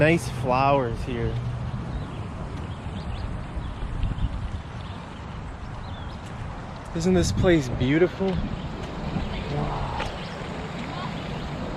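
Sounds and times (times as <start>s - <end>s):
speech: 0.0s - 1.6s, 6.9s - 8.6s
running water rushing: 3.6s - 11.7s.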